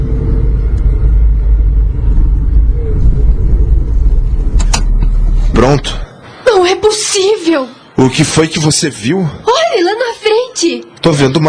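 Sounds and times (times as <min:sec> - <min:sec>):
car slowing and pulling onto mountain road shoulder: 0:00.0 - 0:06.1
speech: 0:05.6 - 0:11.4.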